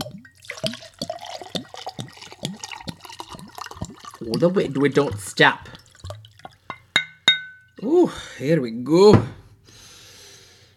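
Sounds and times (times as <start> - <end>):
sherry gurgling and glugging as it is poured into a cup: 0.0 - 6.8
speech: 4.2 - 5.8, 8.4 - 9.4.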